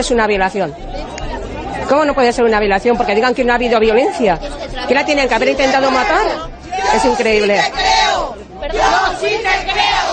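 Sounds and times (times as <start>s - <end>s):
speech: 0.0s - 1.1s, 1.8s - 8.0s
large protest crowd shouting in indignation: 2.8s - 10.1s.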